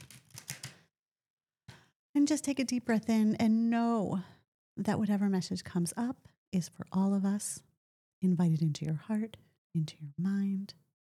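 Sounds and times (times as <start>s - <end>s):
deck of oracle cards being shuffled and riffled: 0.0s - 0.8s
speech: 2.2s - 10.8s.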